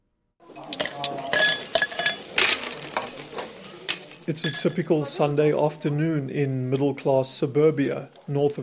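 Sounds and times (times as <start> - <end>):
soft hiss: 0.5 - 8.6
ice cubes clinking into a glass at a barbecue north of Cape Town: 0.6 - 4.9
speech: 4.3 - 8.6.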